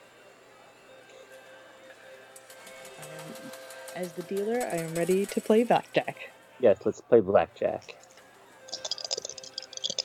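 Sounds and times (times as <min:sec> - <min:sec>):
speech: 0:03.4 - 0:08.0
dice being rolled in a game of blackjack: 0:08.7 - 0:10.0.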